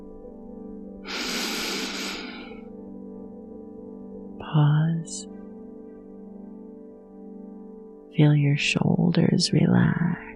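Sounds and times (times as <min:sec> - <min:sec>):
deep breath taken at the surface after diving: 0:01.0 - 0:02.7
speech: 0:04.5 - 0:05.3, 0:08.2 - 0:10.3.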